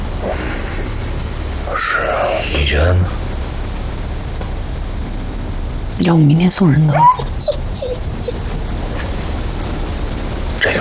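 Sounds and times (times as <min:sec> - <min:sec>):
steady low rumble: 0:00.0 - 0:10.7
speech: 0:01.7 - 0:03.2, 0:06.0 - 0:07.6
dog whimpering: 0:06.9 - 0:08.4.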